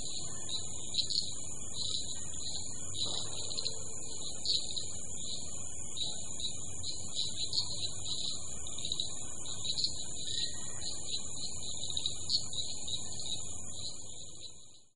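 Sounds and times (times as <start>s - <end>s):
common shrub frog chirping calls: 0.0s - 14.9s
steady high hiss: 0.0s - 14.9s.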